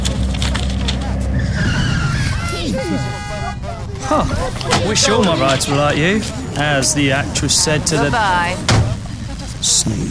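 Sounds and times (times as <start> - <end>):
car engine rumble while pulling over: 0.0 - 10.0
car tyres skidding while pulling over: 0.0 - 10.0
road noise: 0.0 - 10.0
laughter: 1.0 - 10.0
speech: 4.1 - 8.8, 9.6 - 10.0.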